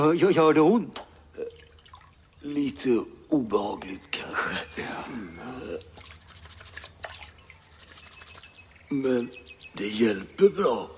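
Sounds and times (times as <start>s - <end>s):
speech: 0.0s - 1.0s, 2.4s - 6.0s, 8.9s - 10.9s
water splashing while washing up at a washbasin: 5.6s - 8.5s
rubbing while washing up at a washbasin: 5.7s - 8.7s.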